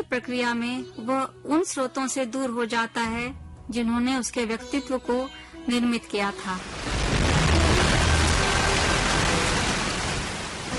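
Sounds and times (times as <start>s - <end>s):
speech: 0.1s - 6.9s
heavy monsoon rain pouring down: 6.6s - 10.7s.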